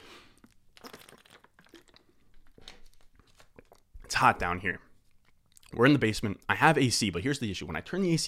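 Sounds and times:
person sipping water: 0.0 - 4.1
plastic bottle crinkling and crunching: 0.2 - 4.2
speech: 4.2 - 4.9, 5.7 - 8.2.

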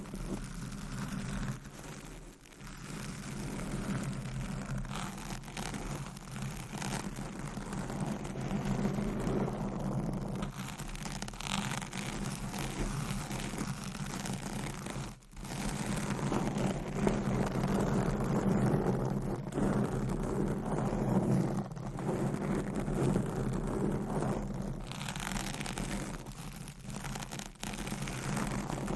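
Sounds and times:
scratching and rubbing against a microphone: 0.0 - 28.9.

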